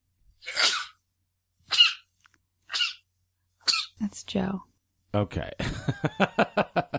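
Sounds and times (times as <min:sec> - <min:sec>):
person sneezing: 0:00.4 - 0:01.0
speech: 0:04.0 - 0:06.8
laughter: 0:05.6 - 0:06.9.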